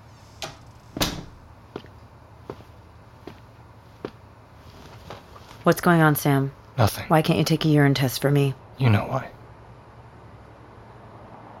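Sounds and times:
door swinging shut with a solid thud: 0.4s - 1.4s
light knocks or footsteps: 1.0s - 5.7s
speech: 5.6s - 9.4s.

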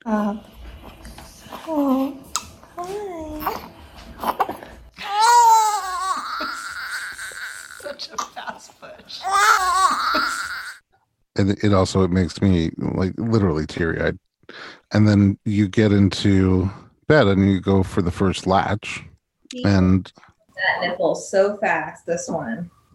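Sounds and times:
speech: 0.0s - 0.5s, 11.4s - 14.2s, 14.9s - 22.8s
newborn baby crying: 2.9s - 8.3s, 9.2s - 10.8s.

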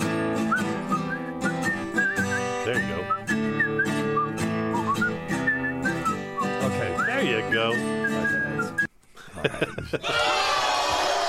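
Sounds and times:
person whistling a bright wandering melody: 0.1s - 8.9s
speech: 7.6s - 8.0s, 9.4s - 10.5s
laughter: 9.2s - 11.0s.

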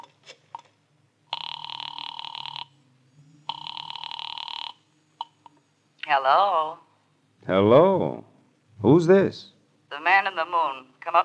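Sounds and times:
telephone ringing on the line through a receiver: 1.3s - 2.8s, 3.5s - 4.9s
speech: 6.1s - 11.2s.

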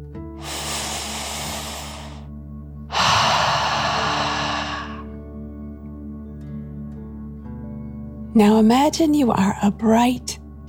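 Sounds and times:
deep breath in and out through mouth: 0.3s - 2.3s, 2.9s - 5.2s
speech: 8.4s - 10.3s.

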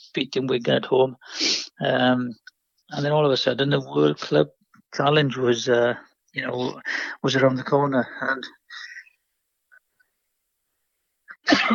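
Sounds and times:
speech: 0.1s - 8.8s, 11.5s - 11.7s
sharp intake of breath: 1.2s - 1.8s
person sneezing: 11.4s - 11.7s.

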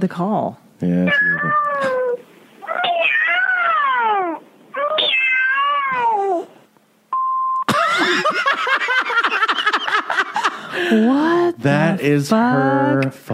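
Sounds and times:
speech: 0.0s - 2.3s, 10.8s - 13.3s
cat meows played as phone voicemail outgoing message: 1.1s - 6.5s
short steady voicemail beep: 7.1s - 7.7s
people laughing: 7.7s - 11.1s.

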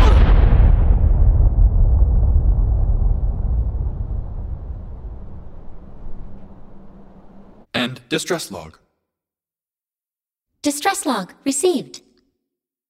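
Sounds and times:
explosion of detonated charges with deep sustained rumble: 0.0s - 7.6s
speech: 7.8s - 8.8s, 10.6s - 12.1s.

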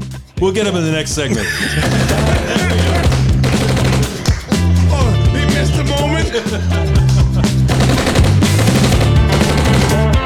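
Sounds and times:
speech: 0.4s - 3.2s, 6.3s - 7.3s
laughter: 0.5s - 8.4s
machine gun fire sound effect: 1.9s - 4.8s, 7.6s - 10.1s.

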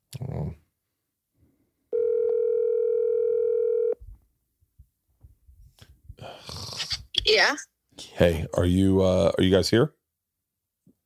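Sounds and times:
phone ringing tone from a call: 1.9s - 4.0s
speech: 7.3s - 10.0s.

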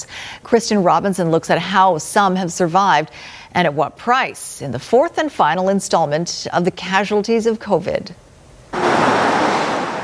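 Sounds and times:
speech: 0.4s - 8.2s
street traffic passing outside a theater: 8.7s - 10.0s.

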